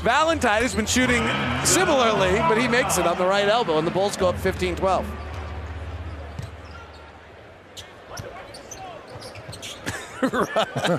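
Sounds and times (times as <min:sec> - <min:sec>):
speech: 0:00.0 - 0:05.3, 0:10.2 - 0:10.9
crowd noise: 0:00.0 - 0:10.9
basketball being dribbled on court during a game: 0:04.3 - 0:06.8
laughter: 0:09.8 - 0:10.9.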